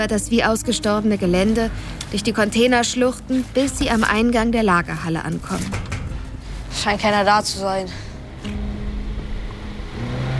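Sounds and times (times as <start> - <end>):
speech: 0.0 - 6.0, 6.8 - 8.6
pickup truck engine rumbling and revving as it pulls away: 8.6 - 10.3.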